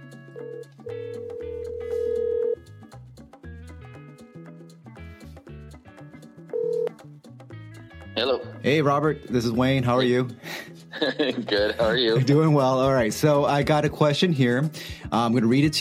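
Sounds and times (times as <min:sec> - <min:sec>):
electronic dialing and ringing tones of a phone call on speakerphone: 0:00.3 - 0:02.6, 0:06.5 - 0:06.9
speech: 0:08.2 - 0:15.7
laughter: 0:10.0 - 0:12.6.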